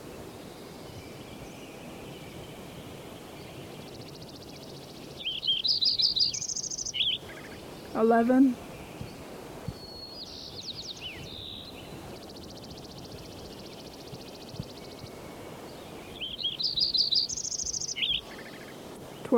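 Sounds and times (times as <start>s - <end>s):
sparrow chirping: 0.9s - 18.8s
speech: 8.0s - 8.6s.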